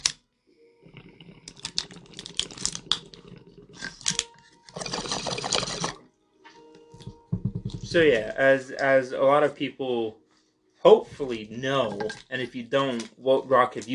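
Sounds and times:
water bubbling through a pipe during a smoking hit: 0.8s - 6.0s
speech: 7.9s - 10.2s, 10.8s - 13.9s.

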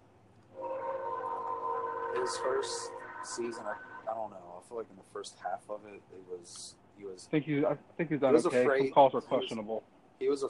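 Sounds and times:
train approaching along nearby train tracks: 0.6s - 4.6s
speech: 2.2s - 10.4s.

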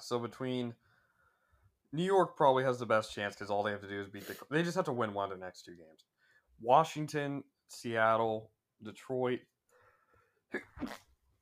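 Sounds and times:
speech: 0.1s - 0.9s, 1.9s - 9.5s, 10.5s - 11.1s
person sneezing: 4.2s - 4.4s, 10.5s - 11.1s.

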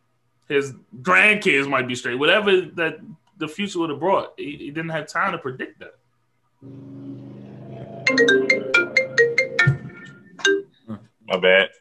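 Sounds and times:
speech: 0.5s - 6.0s, 6.6s - 7.1s, 8.1s - 8.7s, 10.9s - 11.7s
mobile phone melodic ringtone: 7.9s - 10.7s.

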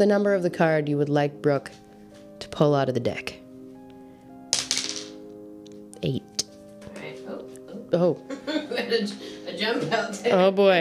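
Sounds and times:
speech: 0.0s - 1.8s, 2.4s - 3.4s, 6.0s - 6.4s, 7.9s - 10.7s
twenty-sided die rolling and clattering: 4.6s - 5.2s
laughter: 8.3s - 9.2s.

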